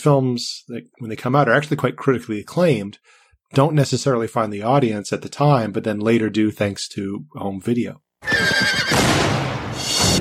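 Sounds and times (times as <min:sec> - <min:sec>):
speech: 0:00.0 - 0:09.4
wild horse whinnying in a film trailer: 0:08.2 - 0:09.1
burst of noise: 0:08.9 - 0:10.1.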